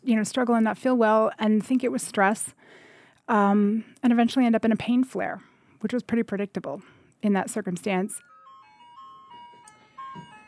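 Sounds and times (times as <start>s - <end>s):
speech: 0.1s - 8.3s
tinny electronic ice cream truck jingle: 8.3s - 10.4s.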